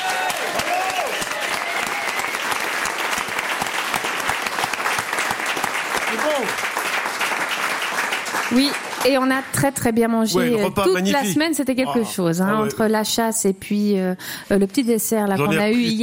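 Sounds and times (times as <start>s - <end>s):
crowd applauding: 0.0s - 9.7s
speech: 8.5s - 16.0s
voices calling out: 10.4s - 12.8s.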